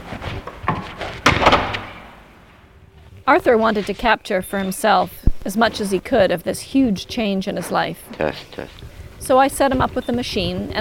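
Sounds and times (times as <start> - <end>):
apartment door swinging shut: 0.6 - 2.3
speech: 3.3 - 10.8.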